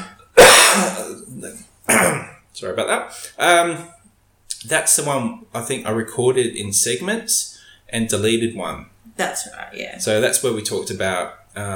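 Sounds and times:
person coughing: 0:00.0 - 0:01.2, 0:01.9 - 0:02.4
rough low throat clearing: 0:00.0 - 0:01.2, 0:01.9 - 0:02.4
speech: 0:02.6 - 0:04.0, 0:04.6 - 0:11.7.

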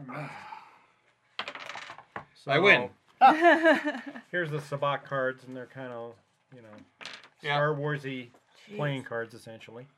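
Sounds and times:
speech: 0:00.1 - 0:00.5, 0:02.4 - 0:09.9
sabacc game dice clattering onto a tabletop: 0:01.4 - 0:02.3, 0:07.0 - 0:07.4.

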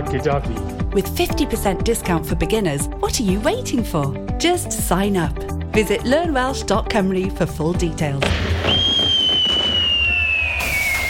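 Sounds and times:
speech: 0:00.1 - 0:08.8
firework high steady whistle: 0:08.4 - 0:11.0.

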